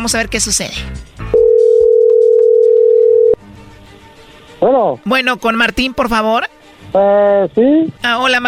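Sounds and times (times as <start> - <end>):
speech: 0.0 - 1.2, 4.6 - 8.4
telephone dial tone while placing a call: 1.4 - 3.4.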